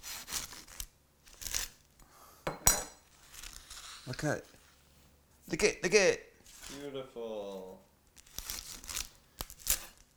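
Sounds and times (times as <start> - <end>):
knife cutting through oven-baked pastrami egg rolls: 0.0 - 5.2, 6.4 - 6.9, 7.5 - 10.1
cutlery clinking: 2.5 - 3.1
speech: 4.1 - 4.6, 5.5 - 7.9.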